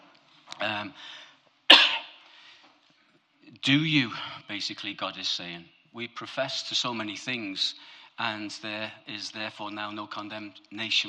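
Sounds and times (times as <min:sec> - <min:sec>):
speech: 0:00.6 - 0:01.3, 0:03.6 - 0:11.0
person coughing: 0:01.7 - 0:02.2.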